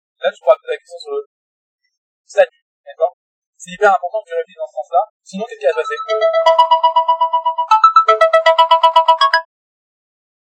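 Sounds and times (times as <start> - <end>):
speech: 0.2 - 1.3, 2.3 - 9.4
phone ringtone playing a rapid electronic melody: 5.6 - 9.5.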